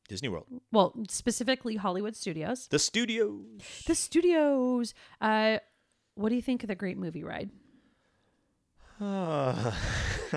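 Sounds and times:
speech: 0:00.1 - 0:07.6, 0:09.0 - 0:10.3
person yawning: 0:08.9 - 0:10.3.

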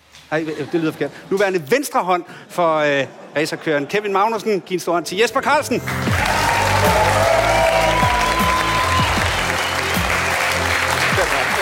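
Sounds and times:
speech: 0:00.3 - 0:06.2
large audience applauding: 0:05.9 - 0:11.6.

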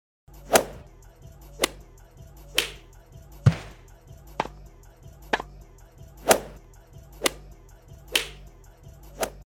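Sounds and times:
sharp slap sound effects with whip-like snap: 0:00.5 - 0:00.9, 0:02.6 - 0:02.8, 0:03.4 - 0:04.6, 0:06.2 - 0:06.6, 0:07.2 - 0:07.4, 0:08.1 - 0:08.4.

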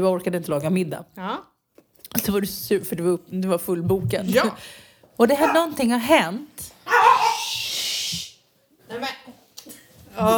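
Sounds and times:
speech: 0:00.0 - 0:01.5, 0:02.2 - 0:07.1, 0:10.2 - 0:10.3
dog barking outside the studio: 0:06.9 - 0:07.4
hissy noise: 0:07.4 - 0:08.4.

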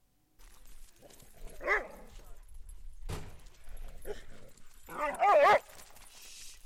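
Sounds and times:
excited dogs yelping, barking and whining after being let out of a car: 0:01.0 - 0:02.5, 0:03.8 - 0:05.8.

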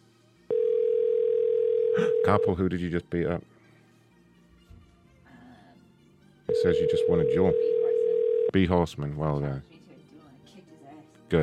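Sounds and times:
electronic phone ringing tone on an unanswered call: 0:00.5 - 0:02.6, 0:06.5 - 0:08.5
speech: 0:02.2 - 0:03.6, 0:06.6 - 0:07.8, 0:08.5 - 0:09.7.

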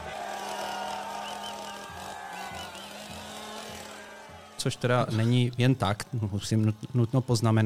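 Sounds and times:
chainsaw engine droning and revving: 0:00.0 - 0:07.6
speech: 0:04.6 - 0:07.6.

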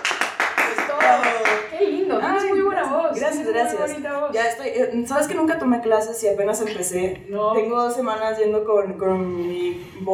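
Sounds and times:
group clapping hands in a steady rhythmic beat: 0:00.0 - 0:01.8
speech: 0:03.1 - 0:10.1.

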